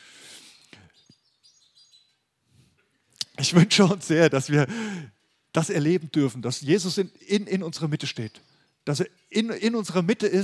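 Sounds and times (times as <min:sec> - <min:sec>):
birds chirping and twittering overhead: 0:00.8 - 0:02.2, 0:06.6 - 0:10.1
speech: 0:03.4 - 0:10.4.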